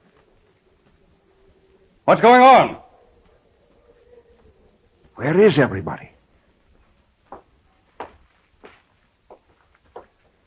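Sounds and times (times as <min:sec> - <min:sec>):
footsteps from upstairs: 0:00.0 - 0:02.0, 0:03.0 - 0:05.2, 0:06.2 - 0:10.4
speech: 0:02.1 - 0:02.8, 0:05.2 - 0:06.1.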